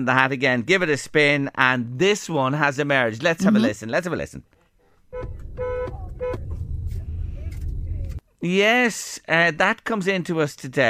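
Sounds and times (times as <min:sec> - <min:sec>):
speech: 0:00.0 - 0:05.4, 0:08.4 - 0:10.8
car horn honks: 0:05.1 - 0:06.6
low steady engine rumble: 0:05.3 - 0:08.2.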